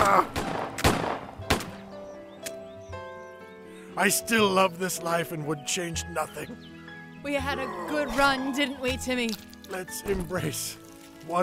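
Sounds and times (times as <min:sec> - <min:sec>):
gunshots in a cartoon scene: 0:00.0 - 0:01.9
speech: 0:04.0 - 0:11.4.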